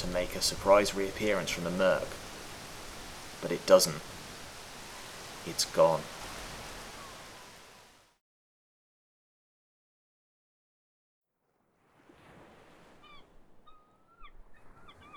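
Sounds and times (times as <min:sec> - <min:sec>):
gulls calling: 0:00.0 - 0:08.0, 0:11.9 - 0:15.1
waves and rushing surf: 0:00.0 - 0:08.1, 0:11.8 - 0:15.1
speech: 0:00.1 - 0:02.2, 0:03.4 - 0:04.2, 0:05.4 - 0:06.2.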